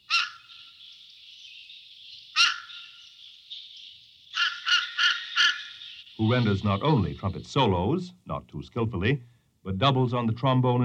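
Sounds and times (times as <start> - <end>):
fish crow calls: 0.0 - 6.8
speech: 6.2 - 10.8.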